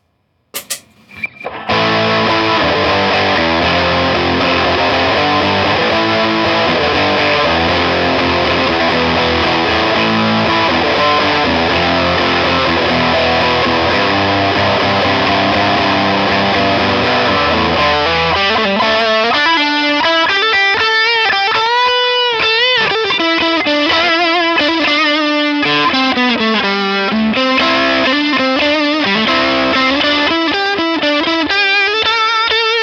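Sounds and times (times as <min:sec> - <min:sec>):
distorted electric guitar on the lead channel of an amp: 0:00.0 - 0:32.8.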